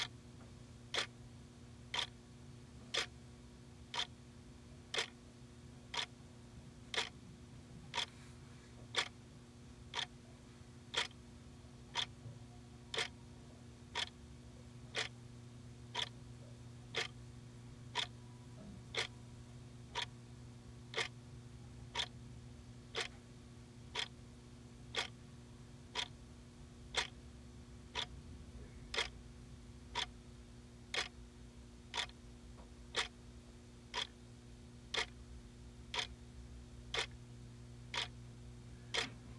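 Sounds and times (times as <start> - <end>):
faint constant low hum from a room appliance: 0.0 - 39.3
desk clock ticking: 0.9 - 1.2, 1.8 - 2.2, 2.8 - 3.2, 3.8 - 4.2, 4.8 - 5.2, 5.8 - 6.2, 6.8 - 7.2, 7.8 - 8.1, 8.8 - 9.2, 9.8 - 10.2, 10.8 - 11.2, 11.8 - 12.3, 12.9 - 13.2, 13.9 - 14.2, 14.9 - 15.2, 15.9 - 16.2, 16.9 - 17.2, 17.8 - 18.3, 18.9 - 19.2, 19.8 - 20.2, 20.8 - 21.2, 21.8 - 22.2, 22.8 - 23.2, 23.9 - 25.3, 25.9 - 26.2, 26.9 - 27.3, 27.9 - 28.3, 28.9 - 29.2, 29.9 - 30.2, 30.8 - 31.2, 31.8 - 33.2, 33.9 - 34.3, 34.9 - 37.2, 37.8 - 38.2, 38.9 - 39.3.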